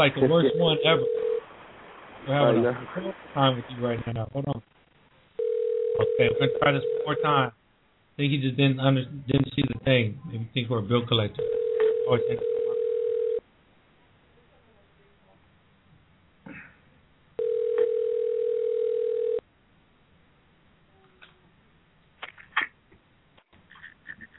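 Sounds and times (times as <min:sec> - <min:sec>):
speech: 0:00.0 - 0:01.3, 0:02.2 - 0:04.7, 0:06.0 - 0:07.6, 0:08.2 - 0:12.5
telephone ringback tone over a thin phone line: 0:00.2 - 0:01.4, 0:05.4 - 0:07.3, 0:11.4 - 0:13.4, 0:17.4 - 0:19.4.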